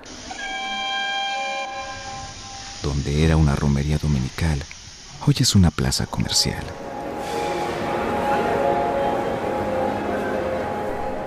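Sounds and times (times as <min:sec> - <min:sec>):
steam locomotive whistle blast: 0:00.0 - 0:02.8, 0:06.7 - 0:11.2
constant rushing noise: 0:00.0 - 0:11.2
speech: 0:02.8 - 0:07.4.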